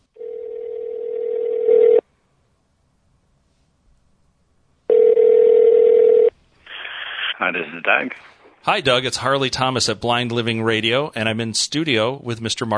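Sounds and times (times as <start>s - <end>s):
telephone ringback tone: 0.2s - 2.0s, 4.9s - 6.3s
speech: 7.4s - 12.7s.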